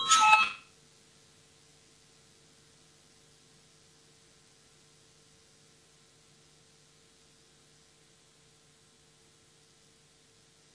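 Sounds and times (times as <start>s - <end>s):
parliamentary voting bell ringing: 0.0s - 0.6s
faint hum: 0.0s - 10.7s.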